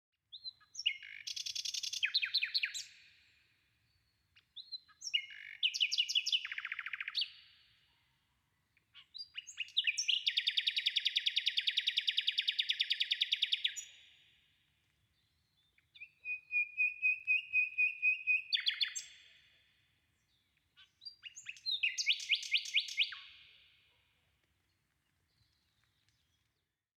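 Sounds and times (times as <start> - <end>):
birds singing: 0.3 - 3.2, 3.9 - 7.6, 8.8 - 14.2, 15.0 - 19.5, 20.2 - 23.7.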